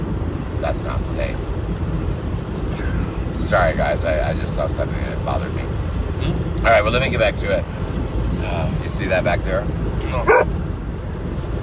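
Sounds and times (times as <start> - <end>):
low steady rumble: 0.0 - 11.6
speech: 0.6 - 1.8, 3.4 - 5.7, 6.3 - 7.8, 8.4 - 10.6
dog barking: 10.2 - 10.6.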